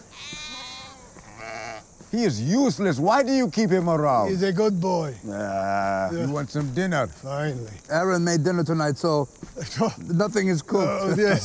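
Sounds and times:
sheep bleating: 0.0s - 1.9s
speech: 2.1s - 11.4s
laughter: 10.8s - 11.4s.

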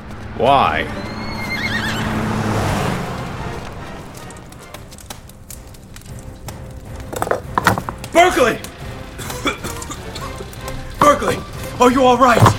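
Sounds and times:
speech: 0.4s - 1.1s, 8.2s - 8.6s, 11.2s - 12.5s
horse neighing and whinnying: 0.9s - 2.3s
hoof clatter: 3.1s - 12.5s.

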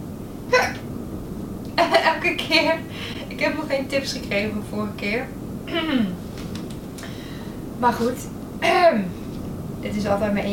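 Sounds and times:
hiccups: 0.5s - 0.8s
speech: 2.2s - 6.2s, 7.8s - 9.2s, 9.8s - 10.5s.

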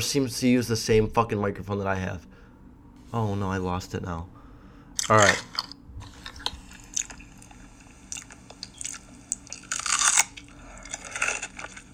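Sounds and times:
speech: 0.0s - 2.3s, 3.1s - 4.4s, 5.0s - 5.6s
crunching and chewing of a pickle in an ASMR recording: 5.0s - 11.9s.

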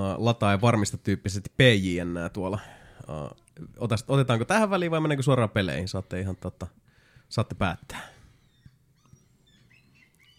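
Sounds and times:
speech: 0.2s - 8.2s
gull calling: 8.4s - 10.3s.

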